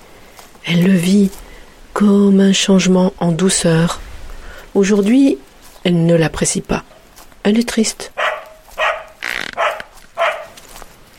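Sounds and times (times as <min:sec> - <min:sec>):
speech: 0:00.7 - 0:04.0, 0:04.8 - 0:06.8, 0:07.4 - 0:08.2
dog barking: 0:08.2 - 0:10.6.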